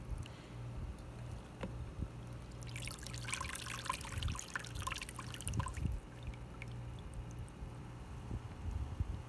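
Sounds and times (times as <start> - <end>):
low hum: 0.0 - 9.2
water draining from a container of soaked wood chips: 2.1 - 7.8.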